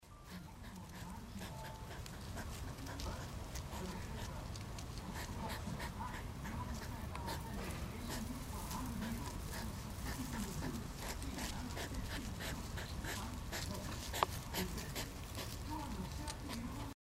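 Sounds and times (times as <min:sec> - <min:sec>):
Erinaceus europaeus hedgehog: 0:00.1 - 0:17.0.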